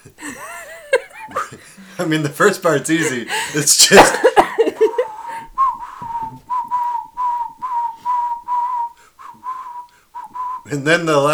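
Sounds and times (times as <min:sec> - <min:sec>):
laughter: 0:00.0 - 0:05.6
speech: 0:02.0 - 0:04.4, 0:10.7 - 0:11.3
person whistling a song melody from memory: 0:04.8 - 0:10.8.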